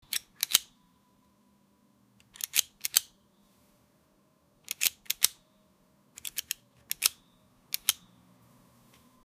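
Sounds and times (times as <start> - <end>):
multiple locks clicking: 0.0 - 0.7, 2.2 - 3.1, 4.6 - 5.4, 6.2 - 8.0.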